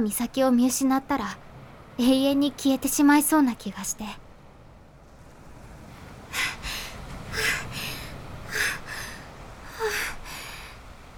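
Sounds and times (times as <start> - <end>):
speech: 0.0 - 4.2
low hiss: 0.0 - 11.1
heavy panting after running: 6.3 - 10.5.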